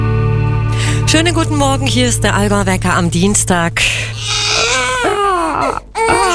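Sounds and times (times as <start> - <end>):
speech: 1.1 - 4.4
baby crying: 4.2 - 6.3.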